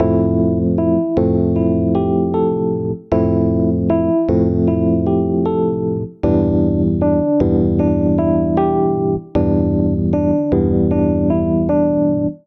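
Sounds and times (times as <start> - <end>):
piano accompaniment in C major: 0.0 - 12.4.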